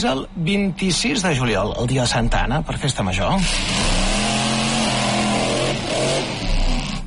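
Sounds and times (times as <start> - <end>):
speech: 0.0 - 4.1
car engine revving hard at an extreme-driving stunt show: 3.4 - 7.0.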